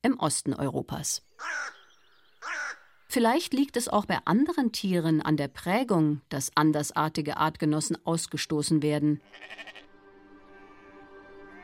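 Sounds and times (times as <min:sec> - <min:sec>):
speech: 0:00.1 - 0:01.8, 0:03.1 - 0:09.7
sheep bleating: 0:09.2 - 0:11.6.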